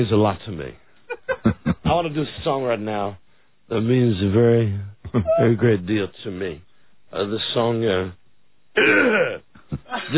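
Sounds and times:
speech: 0.0s - 0.8s, 1.5s - 8.2s, 8.8s - 10.1s
laughter: 1.1s - 2.0s, 5.1s - 5.6s, 9.6s - 10.1s
man clearing his throat: 8.8s - 10.1s.

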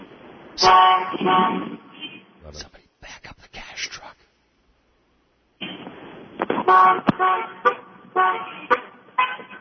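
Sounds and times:
speech: 0.6s - 1.7s, 2.5s - 2.8s, 6.7s - 8.7s
several car horns honking at a green traffic light: 0.6s - 2.4s, 6.5s - 9.5s.

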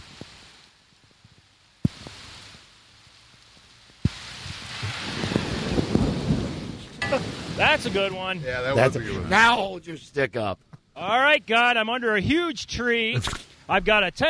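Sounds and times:
sharp cracks of lightning: 0.0s - 10.0s
steady rain of a rainstorm: 0.0s - 14.2s
loud thunderclap with long heavy rumble: 4.0s - 9.8s
speech: 7.6s - 14.2s.

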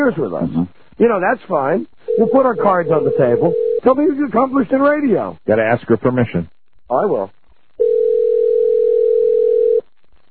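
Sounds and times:
speech: 0.0s - 7.9s
phone line ringing tone on the other end: 2.1s - 3.9s, 7.8s - 9.8s.

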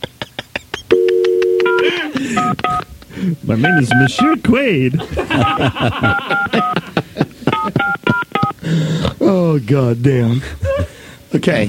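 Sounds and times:
laughter: 0.0s - 8.5s
telephone keypad dialing tones: 0.9s - 2.8s, 3.6s - 4.1s, 5.4s - 6.8s, 7.5s - 8.5s
speech: 3.2s - 6.9s, 9.5s - 10.6s, 11.3s - 11.6s.

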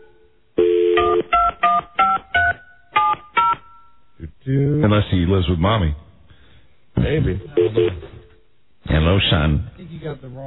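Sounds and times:
telephone keypad tones: 0.6s - 4.0s
speech: 4.5s - 6.0s, 7.0s - 8.1s, 8.8s - 10.4s.

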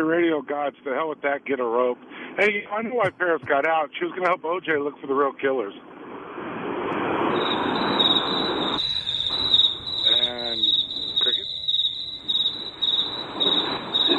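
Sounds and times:
speech: 0.0s - 6.5s
rushing noise: 5.9s - 14.1s
crickets chirping: 7.0s - 14.1s.

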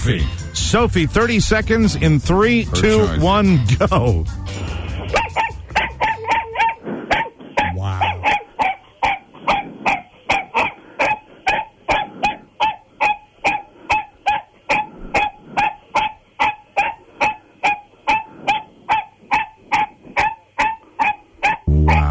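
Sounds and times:
speech: 0.0s - 4.7s
female dachshund barking: 5.1s - 22.0s.

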